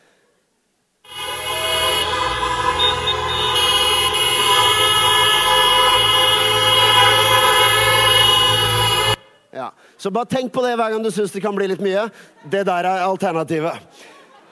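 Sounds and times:
car horns honking: 0:01.1 - 0:09.5
speech: 0:10.0 - 0:14.2.

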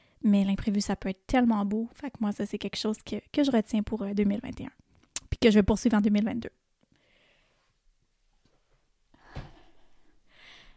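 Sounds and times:
speech: 0:00.2 - 0:04.8, 0:05.4 - 0:06.6
sharp gasping inhale: 0:07.0 - 0:07.6, 0:10.3 - 0:10.7
heavy breathing from someone catching their breath: 0:09.2 - 0:10.7.

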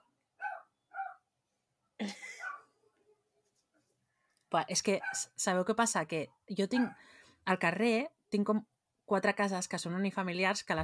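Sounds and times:
dog barking: 0:00.4 - 0:01.2, 0:02.4 - 0:02.7, 0:05.0 - 0:05.3, 0:06.8 - 0:07.0
speech: 0:02.0 - 0:02.3, 0:04.5 - 0:10.8.

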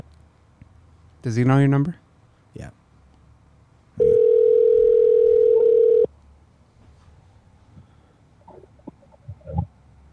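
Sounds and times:
speech: 0:01.2 - 0:02.0, 0:02.6 - 0:02.8
telephone ringback tone as a call goes through: 0:04.0 - 0:06.1.

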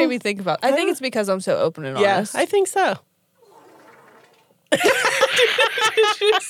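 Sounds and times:
speech: 0:00.0 - 0:03.1, 0:04.7 - 0:06.4
short loud buzzy fart: 0:03.4 - 0:04.5
laughter: 0:04.7 - 0:06.4.

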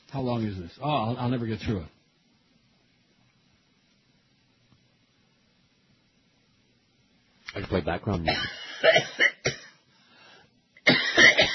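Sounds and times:
speech: 0:00.1 - 0:02.0, 0:07.6 - 0:09.3
person coughing with a cough that has lasted two days: 0:08.2 - 0:09.8, 0:10.8 - 0:11.5.

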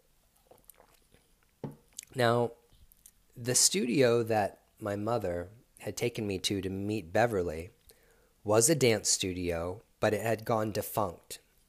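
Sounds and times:
person slurping coffee: 0:00.4 - 0:01.3
speech: 0:02.2 - 0:02.6, 0:03.4 - 0:07.8, 0:08.4 - 0:11.4.

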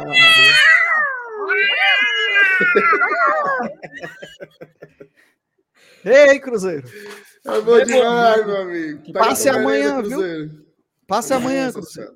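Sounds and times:
cat meowing: 0:00.0 - 0:03.7
speech: 0:00.1 - 0:00.4, 0:02.6 - 0:04.9, 0:06.0 - 0:12.1
laughter: 0:02.2 - 0:05.3.

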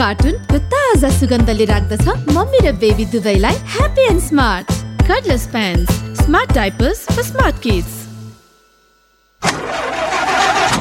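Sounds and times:
speech: 0:00.0 - 0:08.0
old broken-down car engine starting: 0:09.4 - 0:10.8.

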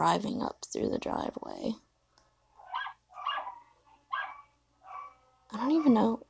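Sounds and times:
speech: 0:00.0 - 0:01.9, 0:05.5 - 0:06.2
dogs barking: 0:02.6 - 0:06.2.

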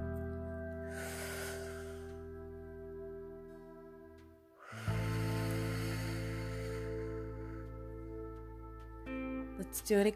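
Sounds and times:
steady sustained tonal drone: 0:00.0 - 0:10.1
slow deep breath out: 0:00.8 - 0:02.6, 0:04.6 - 0:08.6
speech: 0:09.7 - 0:10.1.

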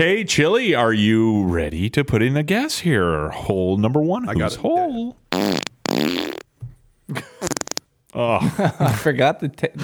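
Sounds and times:
speech: 0:00.0 - 0:06.2, 0:08.1 - 0:09.8
fart: 0:05.3 - 0:06.5, 0:07.4 - 0:07.8.

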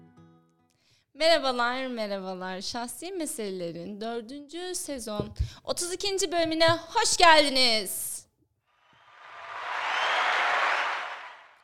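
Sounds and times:
speech: 0:01.2 - 0:08.1
crowd applause sound effect: 0:09.0 - 0:11.6.

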